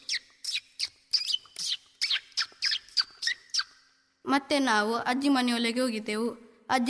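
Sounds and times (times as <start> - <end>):
parrots chirping: 0.0 - 3.9
speech: 4.3 - 6.8.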